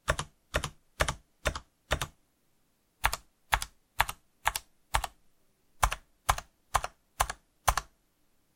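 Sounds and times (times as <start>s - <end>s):
keyboard space, backspace and enter keys pressed: 0.0s - 2.2s, 3.0s - 5.2s, 5.8s - 7.9s.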